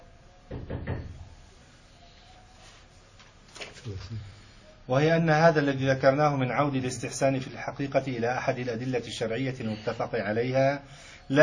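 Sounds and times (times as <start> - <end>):
knocking on a door during a lesson: 0.5 - 1.3
speech: 3.8 - 11.4.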